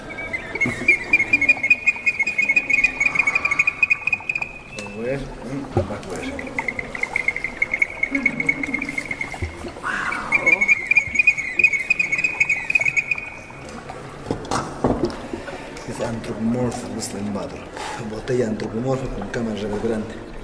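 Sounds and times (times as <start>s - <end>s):
whistling ceramic vessel high-pitched whistles: 0.0s - 5.3s, 6.6s - 13.6s
water pouring and gurgling through a ceramic vessel: 0.0s - 20.4s.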